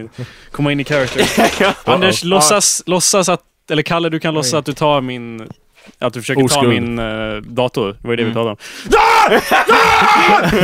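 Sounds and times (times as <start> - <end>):
speech: 0.0 - 10.6
laughter: 1.0 - 2.3, 9.1 - 10.6
person screaming in rage: 8.9 - 10.6.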